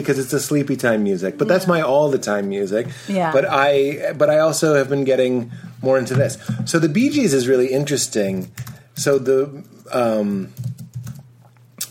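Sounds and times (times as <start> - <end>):
speech: 0.0 - 10.8
typing on a computer keyboard to queue a song: 10.5 - 11.3.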